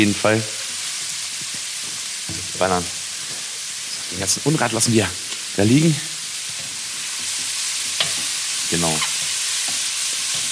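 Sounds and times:
speech: 0.0s - 0.6s, 2.3s - 3.0s, 4.1s - 6.1s, 8.7s - 9.1s
food sizzling and roasting in a pan on a gas stove: 0.0s - 10.4s
spoon stirring food in a pan: 6.4s - 10.4s.

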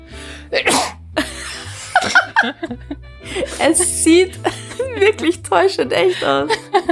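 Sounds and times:
person sneezing on command into a microphone: 0.5s - 1.0s
laughter: 1.2s - 3.7s, 4.4s - 5.3s, 6.0s - 6.8s
speech: 2.4s - 6.8s.

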